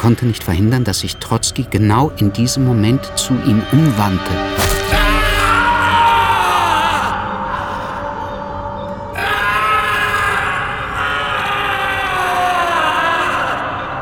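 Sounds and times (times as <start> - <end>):
speech: 0.0 - 5.0
man screaming in horror and pain as an ice axe strikes his skull: 4.6 - 7.9, 9.2 - 13.9.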